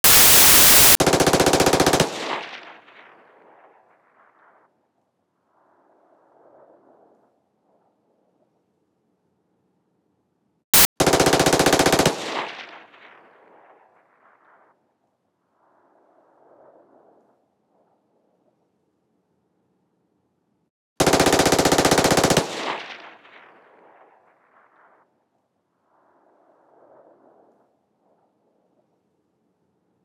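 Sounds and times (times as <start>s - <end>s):
SMG MP7A1 automatic fire with tail: 0.0s - 2.7s, 10.8s - 12.8s, 21.0s - 23.1s.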